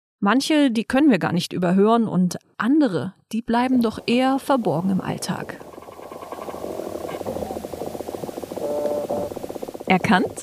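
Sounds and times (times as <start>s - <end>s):
speech: 0.2s - 5.7s, 9.9s - 10.4s
small animals scratching and ticking underground in pasture soil: 3.5s - 10.4s
steady hissy background: 3.6s - 10.4s.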